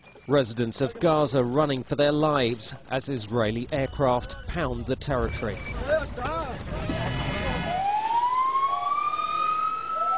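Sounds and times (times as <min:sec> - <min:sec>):
speech: 0:00.3 - 0:06.9
ambulance siren wailing: 0:07.5 - 0:10.1.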